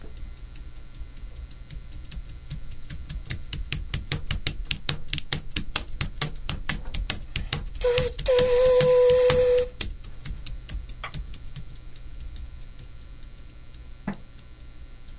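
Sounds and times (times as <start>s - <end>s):
computer keyboard clacking imitating a train: 0.1s - 13.8s
high whistle-like tone: 7.8s - 9.7s.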